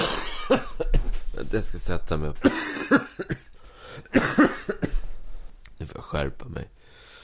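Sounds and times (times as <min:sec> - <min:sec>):
person coughing harshly: 0:00.0 - 0:00.9, 0:02.4 - 0:03.5, 0:04.1 - 0:05.0
speech: 0:00.5 - 0:03.4, 0:04.0 - 0:04.8, 0:06.1 - 0:07.0.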